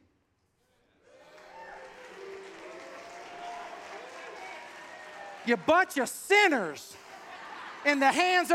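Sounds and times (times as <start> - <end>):
large crowd booing and jeering: 1.1 - 5.8
speech: 5.5 - 7.0, 7.8 - 8.5
laughter: 7.0 - 8.5.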